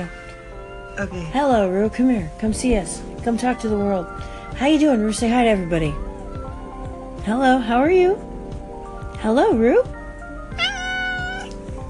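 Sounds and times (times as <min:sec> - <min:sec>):
speech: 0:00.0 - 0:00.2, 0:01.0 - 0:06.1, 0:07.2 - 0:08.3, 0:09.2 - 0:10.0
cat meowing: 0:10.5 - 0:11.6.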